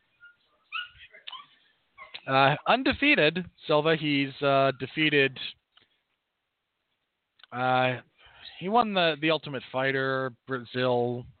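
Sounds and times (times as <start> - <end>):
dogs whimpering and whining: 0.0 - 2.2
speech: 2.3 - 5.6, 7.5 - 11.3.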